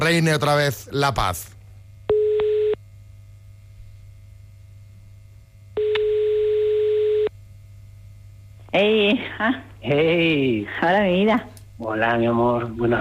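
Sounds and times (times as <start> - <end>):
faint low hum: 0.0 - 12.9
speech: 0.1 - 1.6, 8.7 - 12.9
telephone ringback tone while a call is being placed: 5.8 - 7.3.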